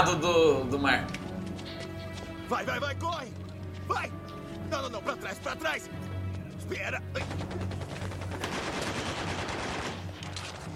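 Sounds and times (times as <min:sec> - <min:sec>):
speech: 0:00.0 - 0:01.2, 0:02.5 - 0:07.8
video game gunfire in a boat chase: 0:07.2 - 0:10.7.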